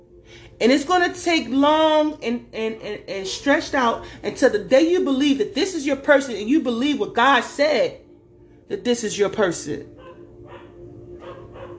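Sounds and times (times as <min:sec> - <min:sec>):
steady low hum: 0:00.0 - 0:11.7
speech: 0:00.6 - 0:08.0, 0:08.7 - 0:10.0
dog barking: 0:10.0 - 0:11.7.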